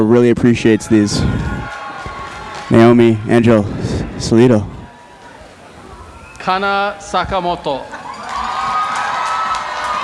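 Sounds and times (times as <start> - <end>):
speech: 0.0 - 1.4, 2.7 - 4.8, 6.4 - 8.0
audience cheering loudly at an event: 0.2 - 10.0
audience applause: 1.3 - 3.6, 4.9 - 10.0.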